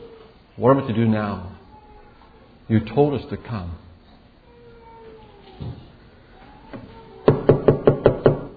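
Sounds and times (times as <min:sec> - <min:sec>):
speech: 0:00.6 - 0:01.6, 0:02.7 - 0:03.8, 0:05.6 - 0:05.8
knocking on a car window: 0:07.3 - 0:08.5.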